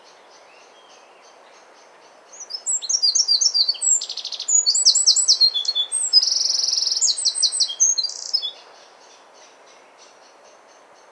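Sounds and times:
low background hiss: 0:00.0 - 0:11.1
Eurasian wren singing, Troglodytes troglodytes: 0:02.3 - 0:08.6.

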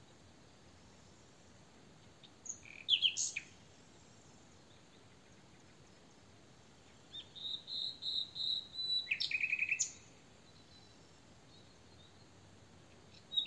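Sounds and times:
common nightingale Luscinia megarhynchos singing: 0:00.0 - 0:13.4.

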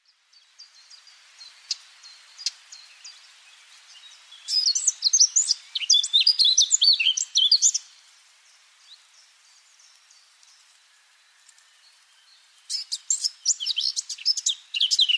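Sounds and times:
Eurasian blackcap Sylvia atricapilla singing: 0:03.9 - 0:07.9, 0:12.7 - 0:15.1.

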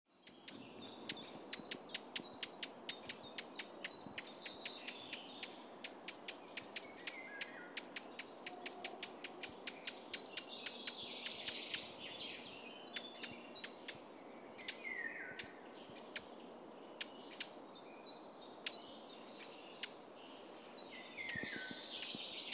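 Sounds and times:
soft background birdsong: 0:00.1 - 0:22.5
Eurasian blackcap Sylvia atricapilla sharp clicking tacs: 0:00.2 - 0:12.0, 0:12.9 - 0:14.0, 0:14.6 - 0:16.3, 0:17.0 - 0:17.6, 0:21.2 - 0:22.5.

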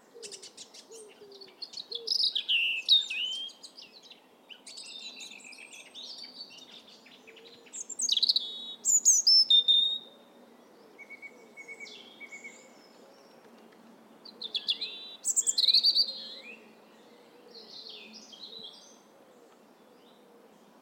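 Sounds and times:
European robin singing high thin phrases: 0:00.0 - 0:13.5, 0:14.2 - 0:20.8.

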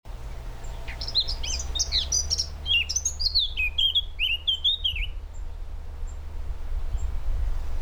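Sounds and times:
Eurasian blackcap Sylvia atricapilla singing fluty whistled notes: 0:00.1 - 0:05.2
constant low hum: 0:00.1 - 0:07.8.

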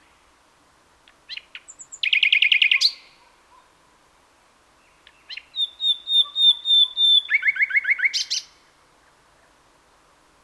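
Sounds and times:
Luscinia megarhynchos common nightingale song with chattering notes: 0:01.1 - 0:03.3, 0:04.8 - 0:08.6.

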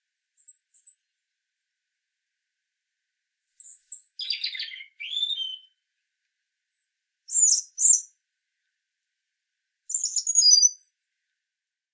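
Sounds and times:
European robin (Erithacus rubecula) singing: 0:03.4 - 0:05.8, 0:07.3 - 0:08.1, 0:09.9 - 0:10.8.

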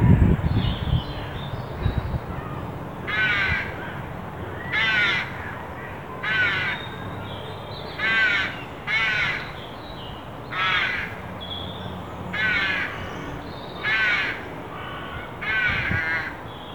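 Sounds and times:
steady background noise: 0:00.0 - 0:16.7
carrion crow cawing, Corvus corone: 0:02.4 - 0:04.0, 0:04.6 - 0:05.6, 0:06.2 - 0:06.9, 0:08.0 - 0:09.6, 0:10.5 - 0:11.2, 0:12.3 - 0:16.4.

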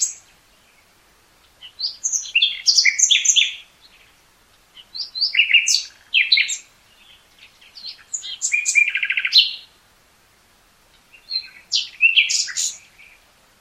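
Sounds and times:
Common nightingale song with high whistles and scratchy chatters: 0:01.6 - 0:03.6, 0:04.8 - 0:09.7, 0:11.2 - 0:13.2.

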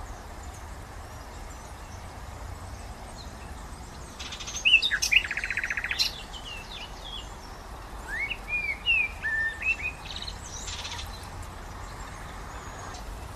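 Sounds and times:
common nightingale Luscinia megarhynchos singing: 0:00.0 - 0:13.3
faint background hiss: 0:00.0 - 0:13.3.

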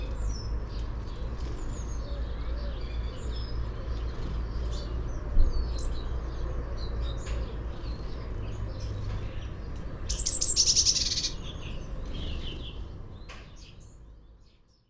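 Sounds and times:
Eurasian blue tit Cyanistes caeruleus singing sliding notes into a rapid trill: 0:00.0 - 0:14.8.

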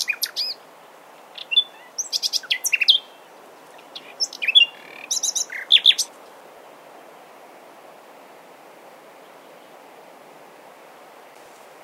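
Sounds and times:
common nightingale Luscinia megarhynchos singing: 0:00.0 - 0:00.6, 0:01.3 - 0:06.2
soft hiss: 0:00.0 - 0:11.8.

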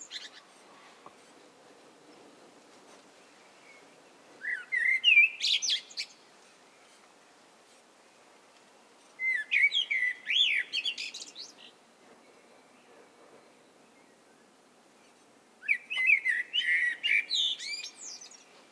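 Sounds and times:
Eurasian blackbird song, Turdus merula: 0:00.0 - 0:01.3, 0:03.2 - 0:07.0, 0:09.2 - 0:18.7.

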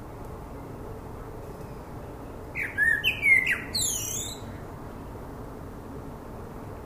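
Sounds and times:
common blackbird Turdus merula singing a phrase: 0:02.5 - 0:04.6.

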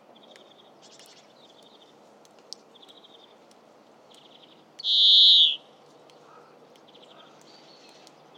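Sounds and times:
European greenfinch Chloris chloris twittering: 0:04.4 - 0:05.6.

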